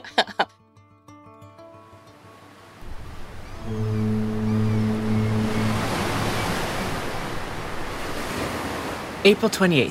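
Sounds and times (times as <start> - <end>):
ocean surf where the Columbia River meets the Pacific Ocean at Astoria: 2.6 - 9.9
short ringing tonal opening: 2.8 - 8.3
deep drawn-out horn: 2.8 - 8.5
speech: 9.3 - 9.9.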